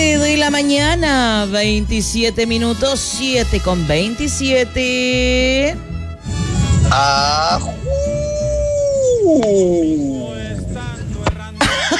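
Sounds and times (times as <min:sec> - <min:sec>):
speech: 0:00.5 - 0:08.2, 0:09.2 - 0:10.2
wolf howling and yelping: 0:06.5 - 0:10.6
laughter: 0:11.5 - 0:11.9.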